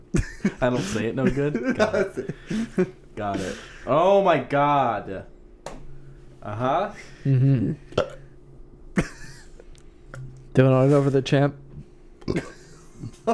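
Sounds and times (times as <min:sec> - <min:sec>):
laughter: 0:00.1 - 0:03.6
speech: 0:00.1 - 0:05.3, 0:06.4 - 0:08.1, 0:10.6 - 0:11.6, 0:12.3 - 0:13.3
low drawn-out gurgly voiced burps: 0:07.6 - 0:08.3, 0:12.2 - 0:12.7.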